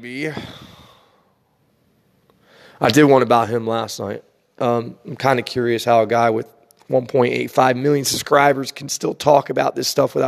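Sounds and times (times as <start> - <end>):
speech: 0.0 - 0.6, 2.8 - 10.2
long airy breath drawn in through the nose: 0.3 - 1.3.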